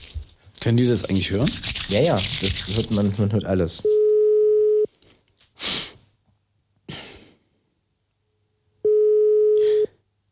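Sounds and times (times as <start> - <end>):
speech: 0.7 - 3.9
telephone ringback tone while placing a call: 3.9 - 4.9, 8.9 - 9.9.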